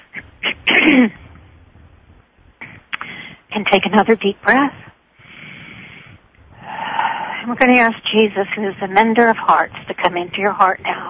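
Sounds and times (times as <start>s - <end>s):
person clearing throat: 0.2s - 1.3s
speech: 0.7s - 1.2s, 3.7s - 4.9s, 7.5s - 11.0s.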